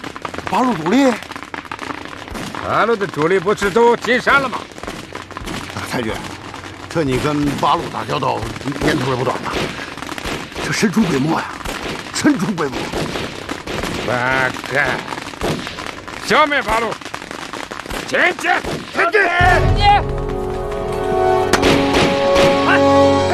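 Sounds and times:
gunshots in a sustained firefight: 0.0s - 20.8s, 21.4s - 23.0s
people shouting: 18.1s - 20.3s, 22.3s - 23.3s.

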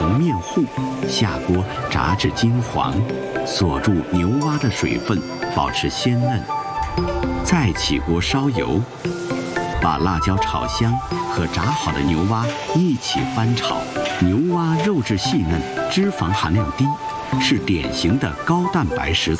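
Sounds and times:
loud continuous voices: 0.0s - 6.5s, 7.4s - 8.9s, 9.8s - 19.3s
bullfrog and chili being stir-fried in hot oil: 9.0s - 9.8s, 11.1s - 18.5s.

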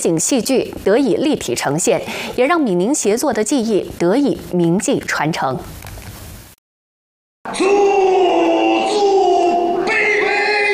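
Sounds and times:
speech: 0.0s - 5.8s
Qinqiang opera singer's full-throated roar at a live-scene drama performance: 7.5s - 10.7s.

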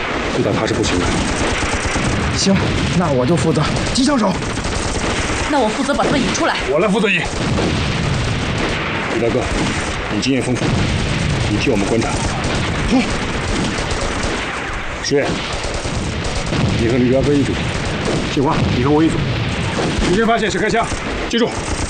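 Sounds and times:
heavy booms: 0.0s - 21.8s
machine gun fire in a wartime battle scene: 0.0s - 21.8s
voices: 0.4s - 1.3s, 2.3s - 4.6s, 5.4s - 7.4s, 9.1s - 10.7s, 11.4s - 14.0s, 15.0s - 15.6s, 16.7s - 19.3s, 19.9s - 21.6s.

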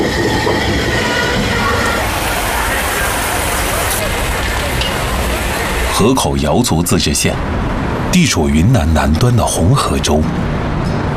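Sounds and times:
faint metallic squeals and rattling: 0.0s - 5.3s
heavy train crossing a bridge over a border river at a border port of entry: 0.0s - 11.1s
speech: 6.0s - 10.6s.

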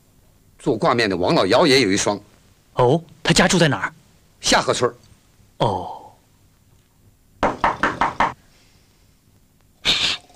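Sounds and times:
speech: 0.6s - 5.0s, 5.6s - 6.0s
loud knocking on a door: 7.4s - 8.4s.

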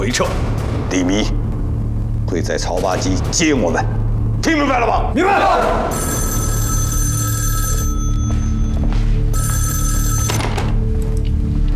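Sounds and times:
steady low rumble: 0.0s - 4.6s
speech: 0.1s - 1.4s, 2.3s - 6.3s
telephone bell ringing: 5.9s - 10.8s.

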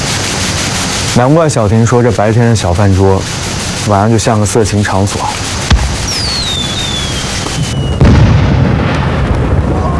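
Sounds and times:
fireworks crackling and rumbling: 0.0s - 9.9s
speech: 1.2s - 5.4s
booming firework explosions: 5.6s - 9.9s
whistling rocket: 5.7s - 9.9s.

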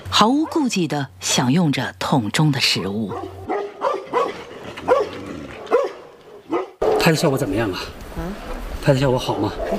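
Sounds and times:
speech: 0.2s - 3.5s, 7.0s - 9.7s
dogs barking: 0.3s - 0.8s, 3.0s - 7.5s, 9.3s - 9.7s.

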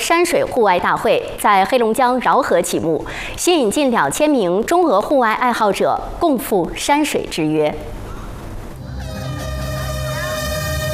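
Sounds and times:
speech: 0.0s - 8.0s
outdoor crowd noise: 8.3s - 10.9s
sustained horn blast signaling race start: 8.8s - 10.9s.

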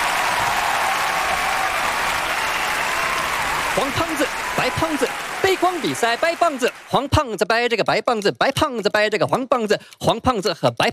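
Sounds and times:
audience applause with many hands clapping: 0.0s - 7.1s
speech: 3.8s - 10.9s.

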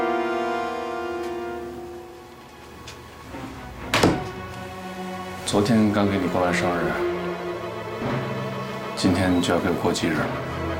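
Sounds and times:
steady sustained musical drone: 0.0s - 10.7s
door shutting with a solid thud: 2.9s - 4.7s
speech: 5.5s - 7.1s, 9.0s - 10.6s.

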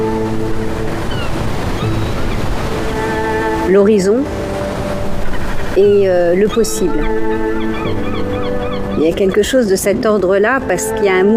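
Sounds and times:
sea waves breaking on the shore between the Mediterranean and the Atlantic: 0.0s - 11.3s
wind: 0.0s - 11.3s
speech: 3.7s - 4.4s, 5.8s - 11.3s.

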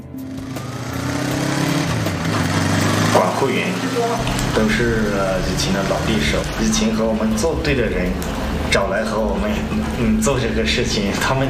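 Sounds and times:
small motorcycle engine riding through the Wuliang Mountains: 0.0s - 6.5s
speech: 3.4s - 11.4s.

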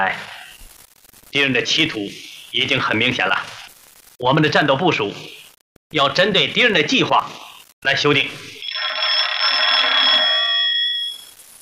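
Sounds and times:
speech: 0.0s - 0.4s, 1.3s - 3.6s, 4.2s - 8.6s
old-fashioned telephone bell ringing: 8.6s - 11.3s.

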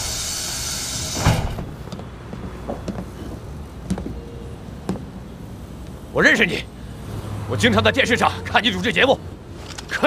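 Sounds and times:
door sliding open with a rushing scrape: 0.0s - 1.8s
door thud: 1.2s - 1.8s
speech: 6.2s - 6.7s, 7.5s - 9.3s.

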